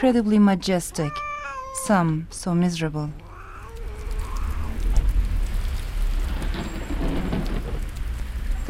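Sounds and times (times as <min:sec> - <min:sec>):
speech: 0:00.0 - 0:03.2
heavy rain pouring: 0:03.1 - 0:08.6.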